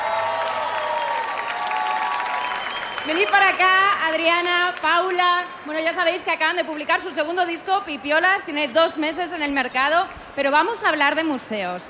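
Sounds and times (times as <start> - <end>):
audience applause for a musical duo after a live performance: 0.0 - 5.1
crowd noise: 0.0 - 11.8
speech: 3.1 - 11.8.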